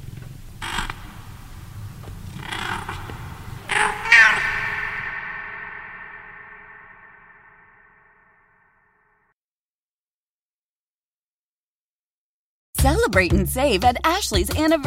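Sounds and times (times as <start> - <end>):
cat in a bed beside a desk meowing for attention: 2.3 - 6.7
speech: 13.0 - 14.8.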